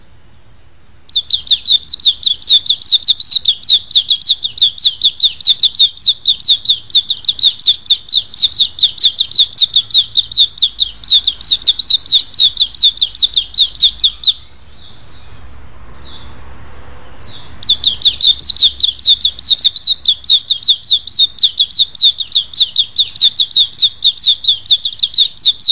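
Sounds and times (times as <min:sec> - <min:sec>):
white-eye twittering song: 0:00.8 - 0:15.4, 0:17.2 - 0:25.6.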